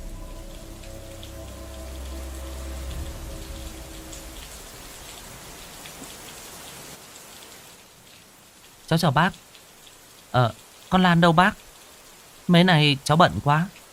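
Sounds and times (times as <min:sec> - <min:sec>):
distant thunder rumbling: 0:00.0 - 0:06.3
steady rain falling: 0:00.0 - 0:13.9
speech: 0:08.9 - 0:09.5, 0:10.3 - 0:11.6, 0:12.5 - 0:13.8.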